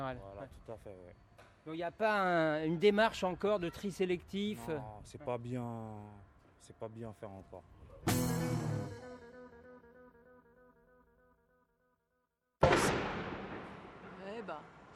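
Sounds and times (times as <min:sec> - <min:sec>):
speech: 0:00.1 - 0:08.8, 0:14.4 - 0:14.8
explosion at waste treatment site with metallic ringing: 0:12.6 - 0:14.2.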